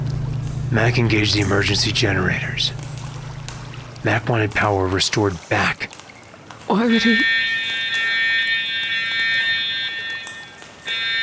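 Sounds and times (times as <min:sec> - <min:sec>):
speech: 0:00.7 - 0:02.9, 0:04.0 - 0:06.0, 0:06.7 - 0:07.4
facility electronic alarm blaring with a harsh buzzing tone: 0:06.8 - 0:11.2.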